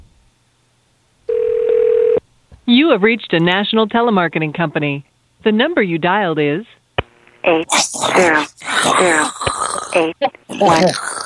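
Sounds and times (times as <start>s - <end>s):
telephone busy signal on a call to a contest line: 1.3s - 2.2s
speech: 2.7s - 6.8s, 7.4s - 11.0s.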